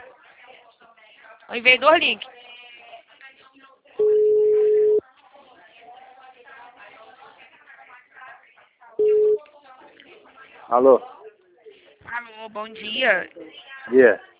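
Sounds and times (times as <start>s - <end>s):
faint chatter: 0.0s - 14.3s
speech: 1.5s - 2.4s, 10.7s - 11.1s, 12.4s - 14.3s
telephone ringback tone of an outgoing call: 4.0s - 5.0s, 9.0s - 9.4s.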